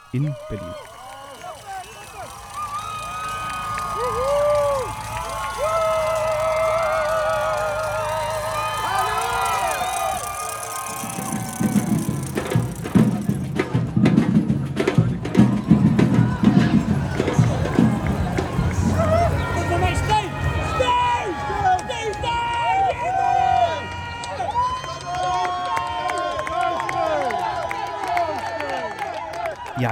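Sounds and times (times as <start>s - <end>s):
spectators' whistles: 0.0s - 13.3s
outdoor crowd cheering and shouting along a marathon route: 0.0s - 29.9s
spectators clapping: 0.0s - 29.9s
speech: 0.1s - 1.0s.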